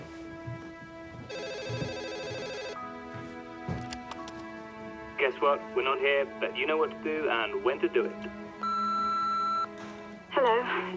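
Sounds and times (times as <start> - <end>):
cordless phone ringing with warbling electronic trill: 1.3 - 2.8, 8.6 - 9.7
speech: 5.3 - 8.6.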